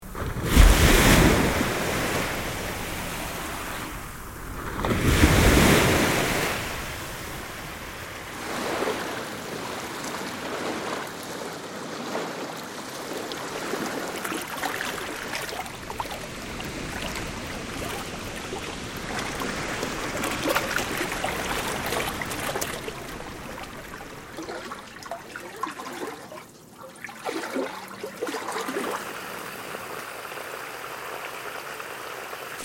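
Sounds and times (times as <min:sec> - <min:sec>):
water in nature: 0:00.0 - 0:32.6.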